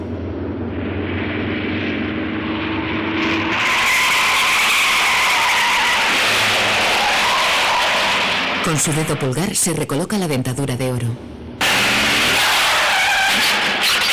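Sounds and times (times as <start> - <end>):
black car engine roaring at high speed: 0.0 - 9.3, 11.3 - 14.1
car tires screeching and skidding: 0.7 - 8.7, 11.6 - 14.1
speech: 8.7 - 11.4.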